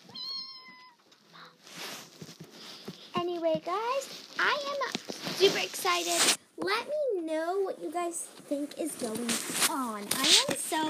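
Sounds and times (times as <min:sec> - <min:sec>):
cat meowing: 0:00.0 - 0:01.2
soft rustling and shuffling: 0:00.0 - 0:10.8
speech: 0:03.4 - 0:10.8.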